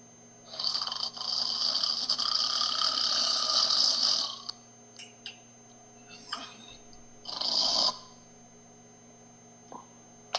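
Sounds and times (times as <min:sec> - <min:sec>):
man snoring: 0:00.5 - 0:04.5, 0:07.2 - 0:08.1.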